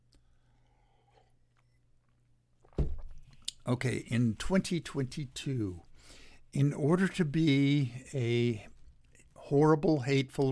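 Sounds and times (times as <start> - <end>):
person sipping a drink: 0.2 - 1.9
speech: 3.7 - 8.7, 9.5 - 10.5.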